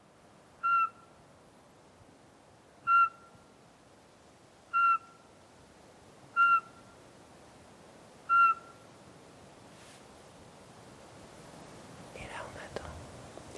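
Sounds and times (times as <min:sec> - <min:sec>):
Eurasian pygmy owl song played back through a speaker: 0:00.6 - 0:01.0, 0:02.9 - 0:03.3, 0:04.7 - 0:05.2, 0:06.4 - 0:06.8, 0:08.3 - 0:08.8.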